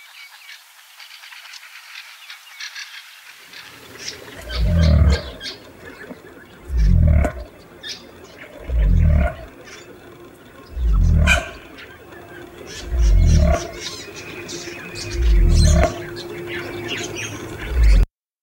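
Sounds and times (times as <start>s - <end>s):
faint bird chatter: 0.0s - 18.1s
cassowary deep booming calls: 4.4s - 5.6s, 6.6s - 7.6s, 8.6s - 18.0s.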